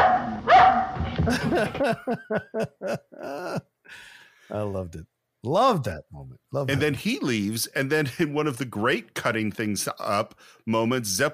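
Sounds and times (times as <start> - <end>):
dog yelping: 0.0 - 1.0
noisy background: 0.0 - 11.3
laughter: 1.2 - 3.7, 6.7 - 7.2
speech: 1.3 - 11.3.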